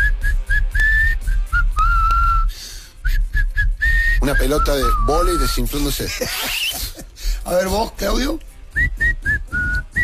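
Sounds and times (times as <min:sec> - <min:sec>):
person clumsily whistling a tune: 0:00.0 - 0:05.9, 0:08.7 - 0:10.0
speech: 0:04.3 - 0:06.8, 0:07.5 - 0:08.5
laughter: 0:05.9 - 0:07.4.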